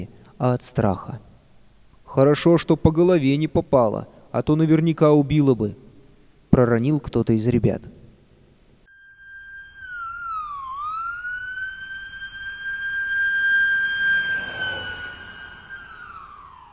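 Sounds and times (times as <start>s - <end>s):
speech: 0.0s - 1.2s, 2.1s - 5.8s, 6.5s - 8.0s
ambulance siren wailing: 9.0s - 16.7s.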